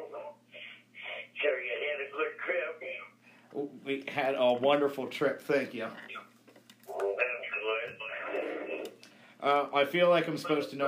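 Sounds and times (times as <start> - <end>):
tinny radio voice broadcast with hollow echo: 0.0 - 3.0, 6.9 - 8.9
speech: 3.6 - 6.2, 9.4 - 10.8.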